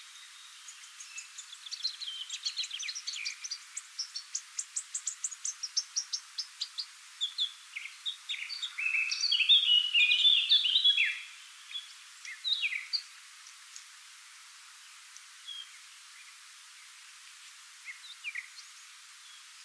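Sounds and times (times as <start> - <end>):
Eurasian Blackcap Sylvia atricapilla singing a rich hurried warble: 0.0 - 14.0, 15.0 - 19.6.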